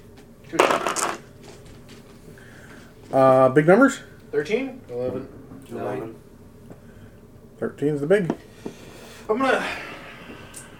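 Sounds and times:
speech: 0.5 - 1.1, 3.1 - 6.2, 7.6 - 8.5, 9.3 - 9.8
dice rattling across a hard tabletop: 0.6 - 1.3.

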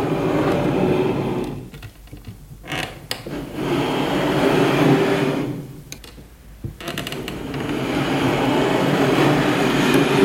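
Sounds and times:
wooden chair scraping across a wooden floor: 0.0 - 1.8, 2.7 - 5.7, 6.8 - 10.2.

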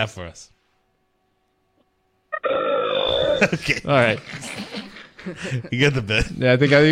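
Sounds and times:
speech: 0.0 - 0.6, 3.4 - 6.9
caller burping loudly: 2.3 - 3.7
short grunt-like onset: 2.4 - 3.5
laughter: 3.2 - 6.4.

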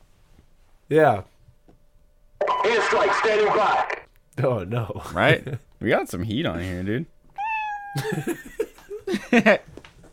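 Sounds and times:
speech: 0.9 - 1.3, 2.9 - 7.1, 7.9 - 9.7
cats yowling in wavering drawn-out cries: 7.4 - 8.2.

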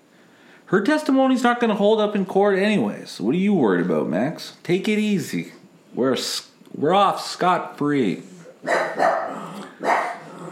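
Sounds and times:
speech: 0.7 - 9.1
dog barking: 8.4 - 10.5.

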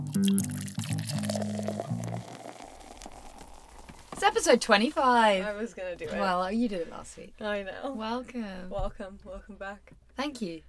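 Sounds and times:
drink glugging from a bottle into a glass: 0.0 - 4.1
speech: 0.2 - 1.3, 4.2 - 10.6.

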